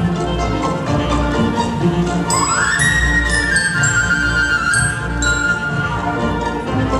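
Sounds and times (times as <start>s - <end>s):
strings: 0.0s - 6.9s
woodwinds: 0.0s - 6.9s
bright glockenspiel notes: 1.5s - 6.9s
clarinets playing: 2.0s - 6.6s
piccolo doubling the flute: 2.2s - 6.9s.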